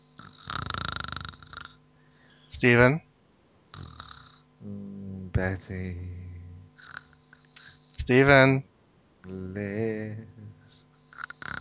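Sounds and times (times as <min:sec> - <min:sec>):
person snoring loudly: 0:00.0 - 0:01.8, 0:03.7 - 0:05.3, 0:06.0 - 0:07.9, 0:10.0 - 0:11.5
speech: 0:02.6 - 0:03.1, 0:04.6 - 0:06.2, 0:08.1 - 0:10.9.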